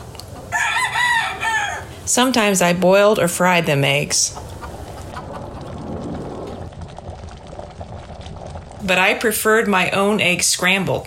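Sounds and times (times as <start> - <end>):
chickens clucking: 0.2 - 2.0, 3.6 - 6.6
speech: 2.1 - 4.4, 8.9 - 11.0.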